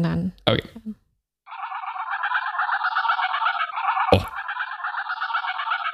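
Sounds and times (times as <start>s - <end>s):
speech: 0.0s - 0.7s
chorus of geese honking: 1.5s - 5.9s.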